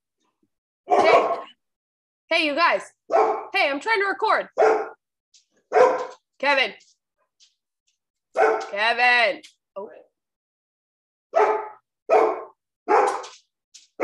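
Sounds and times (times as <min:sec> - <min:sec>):
dogs barking: 0:00.9 - 0:01.6, 0:03.1 - 0:03.6, 0:04.5 - 0:05.0, 0:05.6 - 0:06.2, 0:08.3 - 0:08.8, 0:11.3 - 0:13.4
speech: 0:02.3 - 0:04.9, 0:06.4 - 0:06.9, 0:08.4 - 0:10.0.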